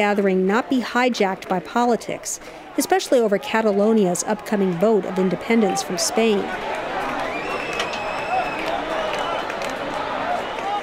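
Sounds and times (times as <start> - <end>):
speech: 0.0 - 6.8
dense outdoor crowd roaring: 0.3 - 10.8
people shouting: 2.8 - 10.8
whistles: 7.1 - 10.8.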